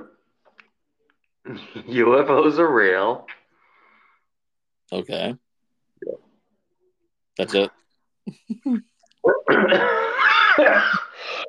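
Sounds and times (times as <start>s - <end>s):
speech: 1.5s - 3.4s, 4.9s - 5.4s, 7.4s - 11.4s
person coughing from vaping: 9.5s - 10.0s.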